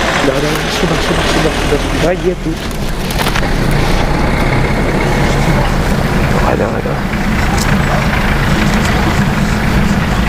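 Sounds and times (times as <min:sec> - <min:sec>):
green military hearse van engine idling: 0:00.0 - 0:10.2
speech: 0:00.3 - 0:03.8, 0:06.5 - 0:07.3.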